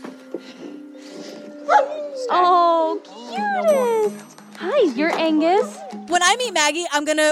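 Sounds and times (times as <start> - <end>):
working search dogs barking, yipping and whimpering: 1.2 - 3.9, 5.3 - 6.2
speech: 1.8 - 4.2, 4.8 - 7.2.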